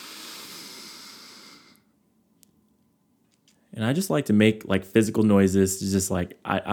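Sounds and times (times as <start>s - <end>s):
deep inhale through the nose: 0.0s - 1.9s
speech: 3.8s - 6.7s.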